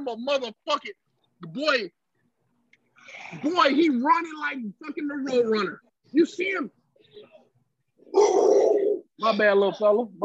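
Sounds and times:
speech: 0:00.0 - 0:02.0, 0:03.1 - 0:07.3, 0:08.1 - 0:10.2
riled-up dog barking: 0:08.1 - 0:08.8.

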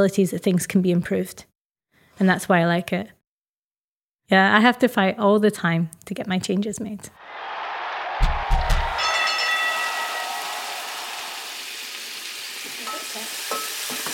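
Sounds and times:
speech: 0:00.0 - 0:01.5, 0:02.2 - 0:03.2, 0:04.3 - 0:07.6
pan sizzling after deglazing with whiskey: 0:08.8 - 0:14.1.

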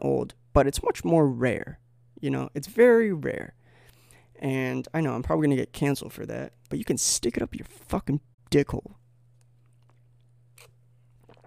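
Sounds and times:
speech: 0:00.0 - 0:03.6, 0:04.4 - 0:09.0
steady low electrical hum: 0:00.0 - 0:11.4
person sipping coffee from a cup: 0:09.7 - 0:11.4.

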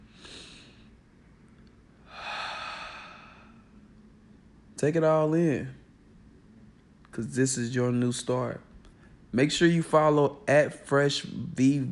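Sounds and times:
deep breath drawn through the nose and mouth: 0:00.0 - 0:01.0, 0:02.0 - 0:03.8
speech: 0:04.8 - 0:05.8, 0:07.2 - 0:08.7, 0:09.3 - 0:11.9.

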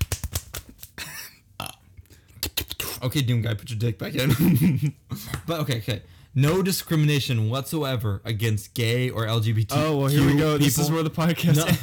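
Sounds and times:
short burps and drawn-out belch: 0:01.6 - 0:01.9
speech: 0:03.0 - 0:11.8.

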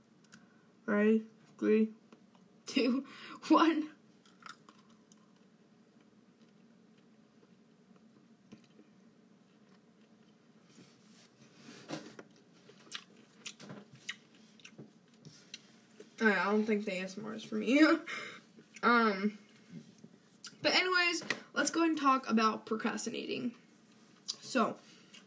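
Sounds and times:
speech: 0:00.9 - 0:02.0, 0:02.8 - 0:04.0, 0:16.2 - 0:19.4, 0:20.6 - 0:23.6, 0:24.5 - 0:24.9
biting into and chewing a single cherry: 0:04.2 - 0:10.7, 0:12.2 - 0:15.7.

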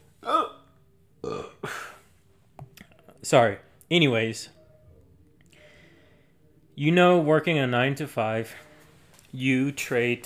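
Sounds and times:
drawn-out voiced burp and rough belching: 0:00.2 - 0:02.0
speech: 0:03.2 - 0:04.6, 0:06.8 - 0:08.6, 0:09.3 - 0:10.2.

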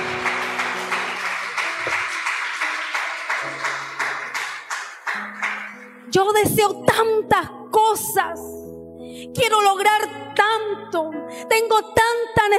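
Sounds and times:
audience applauding: 0:00.0 - 0:06.0
sustained keyboard chords: 0:00.0 - 0:12.4
speech: 0:06.2 - 0:08.6, 0:09.2 - 0:12.5.

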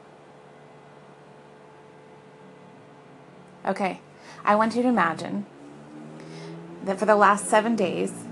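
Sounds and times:
distant engines rumbling outside closed windows: 0:02.2 - 0:08.3
speech: 0:03.6 - 0:05.6, 0:06.8 - 0:08.2.

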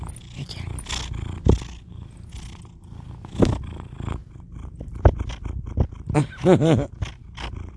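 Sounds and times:
cat purring at phone: 0:00.0 - 0:07.7
speech: 0:00.4 - 0:00.7, 0:06.2 - 0:07.0.

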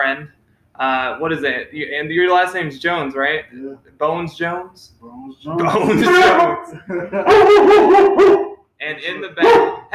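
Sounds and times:
speech: 0:00.1 - 0:09.9
laughter: 0:05.6 - 0:07.9
dog barking: 0:07.2 - 0:08.6, 0:09.4 - 0:09.9.

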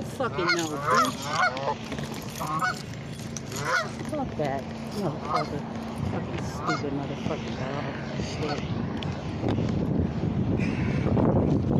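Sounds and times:
steady low rumble of noise: 0:00.0 - 0:11.7
ducks calling in alarm with agitated squawking: 0:00.2 - 0:02.9, 0:03.5 - 0:04.0, 0:05.1 - 0:05.7, 0:06.4 - 0:08.8, 0:10.6 - 0:11.2
speech: 0:00.2 - 0:03.0, 0:03.6 - 0:10.0.

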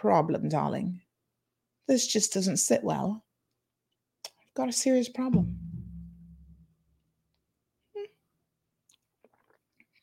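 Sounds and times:
speech: 0:00.0 - 0:01.1, 0:01.9 - 0:03.3, 0:04.6 - 0:05.7
low hum: 0:05.4 - 0:06.8
person sipping and swallowing water: 0:08.9 - 0:10.0.

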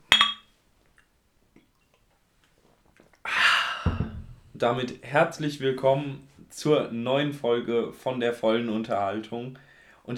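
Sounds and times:
glasses clinking in a toast: 0:00.0 - 0:00.5
speech: 0:04.6 - 0:10.1.

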